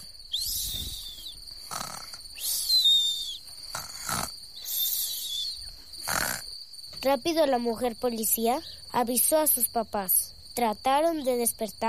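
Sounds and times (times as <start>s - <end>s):
children snoring while sleeping in a cave: 0.6s - 2.7s, 3.6s - 5.3s, 5.9s - 6.5s
speech: 7.0s - 11.8s.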